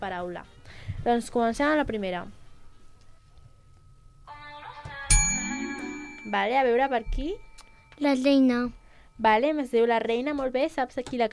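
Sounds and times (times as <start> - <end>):
speech: 0.0 - 2.4, 6.3 - 11.3
soft tonal chime: 2.6 - 9.6
small hand bell rung in a song-guessing quiz game: 5.1 - 9.2.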